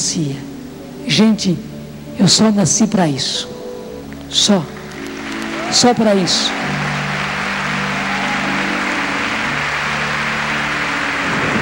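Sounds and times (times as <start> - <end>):
speech: 0.1 - 3.6, 4.3 - 4.8, 5.7 - 6.8
heavy rain pouring during a thunderstorm: 6.5 - 11.6.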